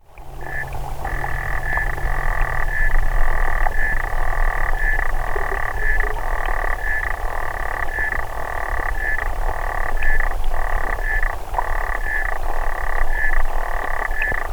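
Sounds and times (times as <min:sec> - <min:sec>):
strong low hum and rumble: 0:00.0 - 0:06.6
Xenopus frog calling: 0:00.0 - 0:14.5.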